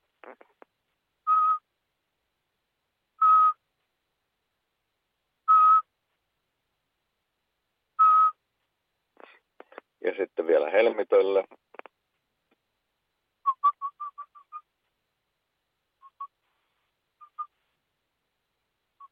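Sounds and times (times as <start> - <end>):
person whistling an imitation of a Eurasian pygmy owl call: 1.3 - 1.6, 3.2 - 3.6, 5.5 - 5.9, 8.0 - 8.4, 13.4 - 14.7, 16.0 - 16.4, 17.2 - 17.5, 19.0 - 19.1
speech: 10.1 - 11.7.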